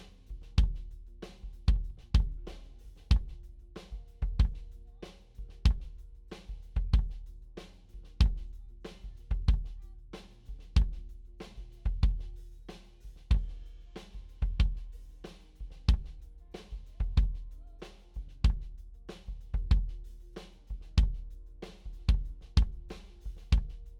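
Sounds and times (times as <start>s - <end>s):
solo kick drum: 0.6s - 0.9s, 1.6s - 2.5s, 3.1s - 3.4s, 4.2s - 4.7s, 5.6s - 6.0s, 6.8s - 7.2s, 8.2s - 8.6s, 9.3s - 9.9s, 10.8s - 11.1s, 11.9s - 12.3s, 13.3s - 13.6s, 14.4s - 14.9s, 15.8s - 16.2s, 17.0s - 17.5s, 18.4s - 18.8s, 19.5s - 20.0s, 20.9s - 21.3s, 22.0s - 23.9s.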